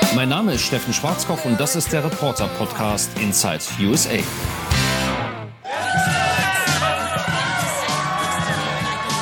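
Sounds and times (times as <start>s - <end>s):
speech: 0.2s - 5.1s
crowd cheering: 5.6s - 9.2s
high-pitched squeals and whoops: 5.7s - 9.2s.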